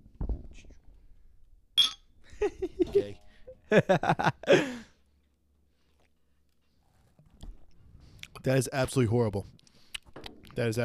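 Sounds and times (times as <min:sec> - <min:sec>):
glasses of pumpkin beer clinking in a toast: 0:01.8 - 0:02.1
laughter: 0:02.3 - 0:04.9
speech: 0:02.6 - 0:04.8, 0:08.4 - 0:09.6, 0:10.6 - 0:10.8.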